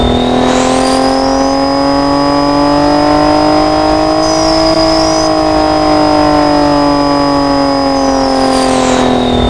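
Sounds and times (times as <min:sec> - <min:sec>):
V8 turbo engine running: 0:00.0 - 0:09.4.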